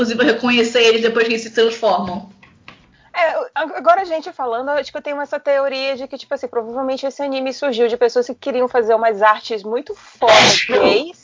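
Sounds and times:
speech: 0:00.0 - 0:02.4, 0:03.2 - 0:11.2
person sneezing: 0:10.2 - 0:11.0.

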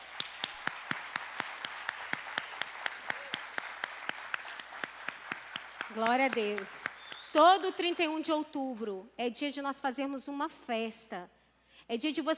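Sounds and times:
church crowd applause: 0:00.0 - 0:07.4
church audience clapping in rhythm: 0:00.0 - 0:08.0
speech: 0:06.0 - 0:12.3.

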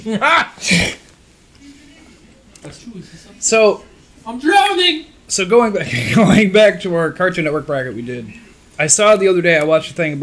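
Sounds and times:
speech: 0:00.0 - 0:01.0, 0:02.6 - 0:10.2
loud sneeze: 0:00.5 - 0:01.1.

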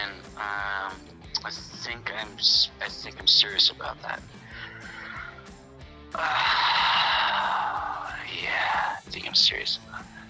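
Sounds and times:
speech: 0:01.4 - 0:04.4, 0:06.2 - 0:06.7, 0:08.3 - 0:09.9
heavy breath blown into the microphone: 0:04.3 - 0:08.2.

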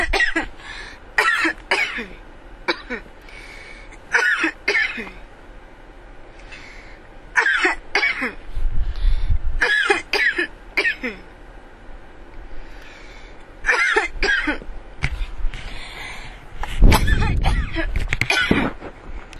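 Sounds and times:
coughing fit: 0:00.0 - 0:00.5, 0:01.2 - 0:03.1, 0:04.1 - 0:05.2, 0:07.4 - 0:08.4, 0:09.6 - 0:11.3, 0:13.7 - 0:14.7, 0:16.9 - 0:18.8
heavy breathing: 0:00.6 - 0:01.0, 0:03.2 - 0:04.0, 0:06.4 - 0:07.1, 0:08.8 - 0:09.4, 0:12.5 - 0:13.4, 0:15.2 - 0:16.9.

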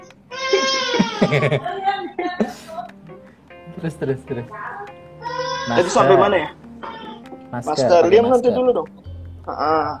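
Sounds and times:
young child crying in wails and sobs: 0:00.3 - 0:01.6, 0:05.2 - 0:06.0
speech: 0:01.2 - 0:02.6, 0:03.8 - 0:04.7, 0:05.7 - 0:06.6, 0:07.5 - 0:09.9.

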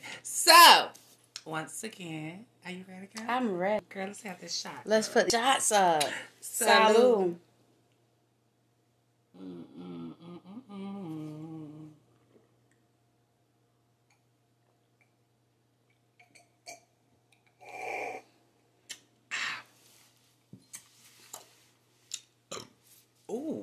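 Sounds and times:
faint steady hum: 0:00.0 - 0:23.6
speech: 0:01.5 - 0:07.5
throaty burp: 0:22.5 - 0:22.8.

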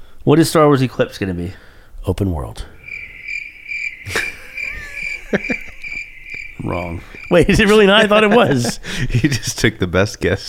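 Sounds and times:
speech: 0:00.2 - 0:02.8, 0:05.3 - 0:05.6, 0:06.6 - 0:10.4
crickets chirping: 0:02.6 - 0:09.0
laughter: 0:04.1 - 0:10.4.

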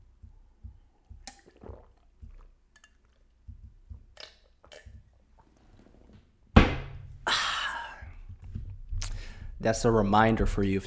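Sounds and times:
person gulping water: 0:00.6 - 0:05.6, 0:07.2 - 0:09.2
speech: 0:09.6 - 0:10.8.

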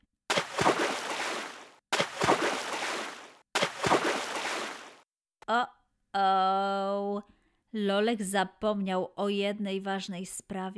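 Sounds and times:
churning, sloshing spray of pool water: 0:00.3 - 0:05.0
loud splashes of zebras and a lion jumping into a swimming pool: 0:00.3 - 0:05.0
speech: 0:05.5 - 0:10.7.

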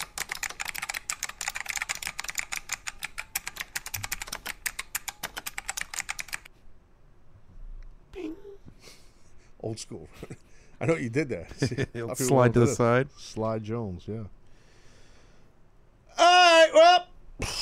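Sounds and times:
fingers typing an email reply on a computer keyboard: 0:00.0 - 0:06.5
speech: 0:09.6 - 0:14.4.

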